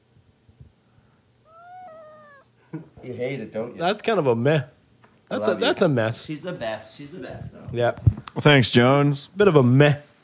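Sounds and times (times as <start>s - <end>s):
cat giving a drawn-out wavering meow: 1.4s - 2.5s
speech: 2.7s - 10.1s.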